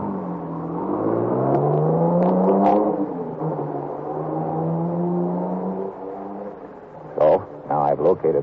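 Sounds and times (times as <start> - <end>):
car engine revving and pulling away: 0.0 - 8.4.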